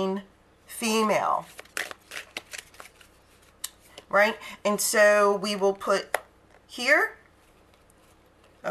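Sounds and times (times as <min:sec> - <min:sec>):
speech: 0:00.0 - 0:01.7, 0:04.1 - 0:07.2
deck of cards being shuffled: 0:01.4 - 0:04.1.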